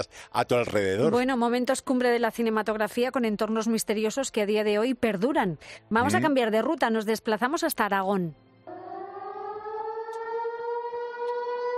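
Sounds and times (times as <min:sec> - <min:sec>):
speech: 0:00.0 - 0:08.5
air-raid siren wailing: 0:08.7 - 0:11.7.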